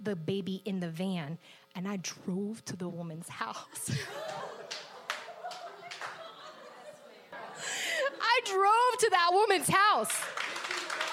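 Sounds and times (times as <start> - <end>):
speech: 0.0 - 4.8, 8.4 - 10.4
laughter: 3.7 - 8.5
audience clapping: 4.2 - 6.5, 9.8 - 11.1.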